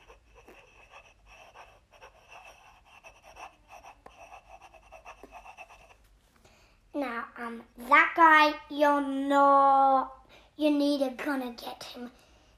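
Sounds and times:
pen scratching on paper while writing notes: 0:00.0 - 0:06.1
speech: 0:07.3 - 0:12.3.

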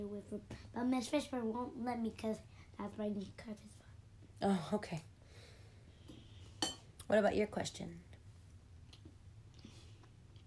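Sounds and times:
speech: 0:00.0 - 0:03.8, 0:04.4 - 0:05.1, 0:07.1 - 0:08.1
quiet chewing of food: 0:08.9 - 0:10.4.

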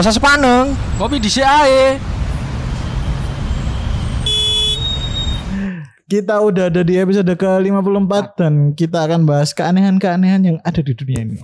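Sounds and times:
speech: 0:00.0 - 0:02.1, 0:06.1 - 0:11.4
heavy traffic rumbling in a traffic jam: 0:00.0 - 0:05.8
car horn blaring: 0:03.2 - 0:05.5.

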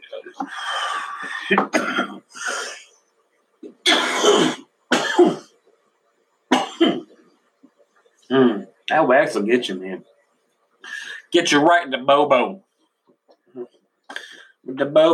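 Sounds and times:
person clearing throat: 0:00.4 - 0:02.8, 0:03.6 - 0:05.5, 0:06.5 - 0:07.2
person coughing: 0:00.4 - 0:02.8, 0:03.8 - 0:05.5, 0:06.5 - 0:07.1
speech: 0:01.5 - 0:01.8, 0:08.3 - 0:10.1, 0:11.3 - 0:12.6, 0:13.5 - 0:13.8, 0:14.7 - 0:15.1.

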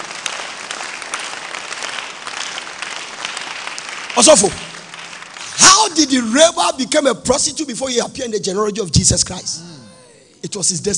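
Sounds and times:
dense steady applause from an audience: 0:00.0 - 0:06.2
speech: 0:04.2 - 0:04.7, 0:05.6 - 0:09.8, 0:10.5 - 0:10.9.

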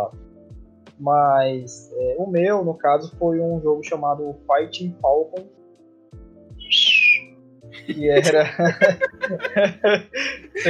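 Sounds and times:
speech: 0:01.0 - 0:05.6, 0:07.9 - 0:10.6
man imitating an eagle's cry: 0:06.6 - 0:07.2
laughter: 0:07.8 - 0:10.6.

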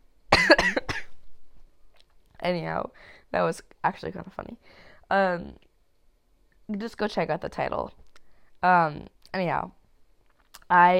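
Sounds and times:
person coughing after laughing: 0:00.3 - 0:01.1
speech: 0:02.4 - 0:05.7, 0:06.7 - 0:08.0, 0:08.6 - 0:09.8, 0:10.7 - 0:10.9.

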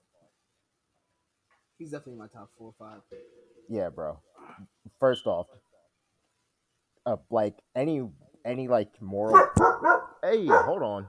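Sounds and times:
speech: 0:01.8 - 0:05.7, 0:07.1 - 0:11.0
dog yelping or whining: 0:09.3 - 0:10.9
dog barking: 0:09.3 - 0:11.0.

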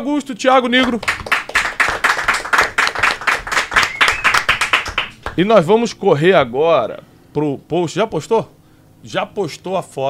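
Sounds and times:
speech: 0:00.0 - 0:01.3, 0:05.4 - 0:10.0
group of people applauding: 0:00.8 - 0:05.4.

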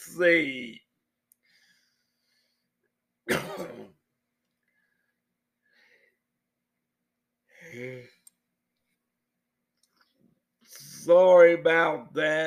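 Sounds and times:
speech: 0:00.0 - 0:00.8, 0:07.7 - 0:08.2, 0:11.1 - 0:12.4
cough-like burst: 0:03.3 - 0:04.0
breathy vocal sounds: 0:07.5 - 0:08.3
person yawning: 0:07.6 - 0:08.2.

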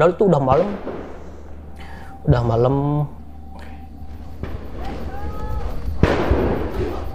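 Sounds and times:
speech: 0:00.0 - 0:00.9, 0:02.2 - 0:03.2
noisy outdoor background: 0:00.0 - 0:07.1
sharp gunshots: 0:00.4 - 0:03.2, 0:04.2 - 0:07.1
faint voices and shouting: 0:01.7 - 0:07.1.

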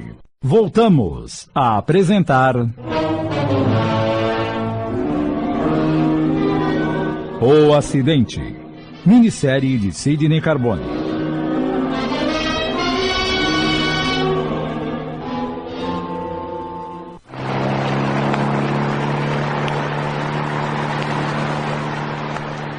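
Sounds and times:
speech: 0:00.0 - 0:04.0, 0:07.4 - 0:11.0
car engine roaring as the car speeds along a road between Porto Alegre and São Lourenço do Sul: 0:02.8 - 0:07.5, 0:10.8 - 0:22.7.

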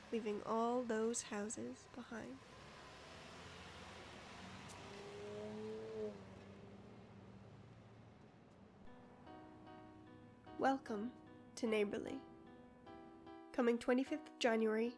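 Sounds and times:
truck engine rumbling and revving, driving away: 0:00.0 - 0:08.8
speech: 0:00.1 - 0:02.6, 0:10.6 - 0:12.3, 0:13.6 - 0:14.9.

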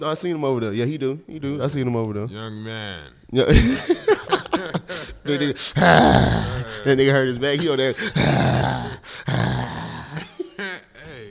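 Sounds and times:
speech: 0:00.0 - 0:08.7
laughter: 0:03.4 - 0:11.2
low rough growl: 0:05.8 - 0:07.0, 0:08.0 - 0:10.2.

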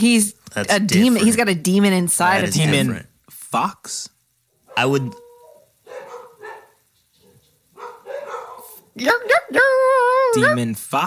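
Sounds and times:
speech: 0:00.0 - 0:04.1, 0:04.8 - 0:05.2, 0:09.0 - 0:11.0
dogs barking: 0:04.6 - 0:09.5.

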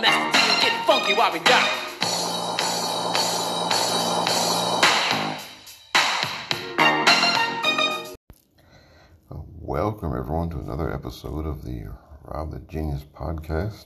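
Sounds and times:
1980s hip-hop song with punchy beat and synth stabs: 0:00.0 - 0:08.1
speech: 0:01.1 - 0:01.8, 0:09.8 - 0:13.8.

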